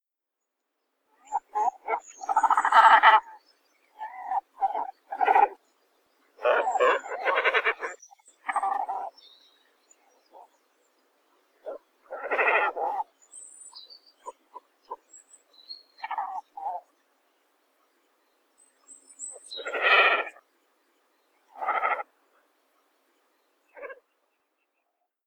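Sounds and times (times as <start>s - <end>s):
great cormorant Phalacrocorax carbo sinensis calling: 1.2s - 3.4s, 4.0s - 5.6s, 6.4s - 9.2s, 11.6s - 13.2s, 16.0s - 16.9s, 19.3s - 20.4s, 21.5s - 22.1s, 23.7s - 24.0s.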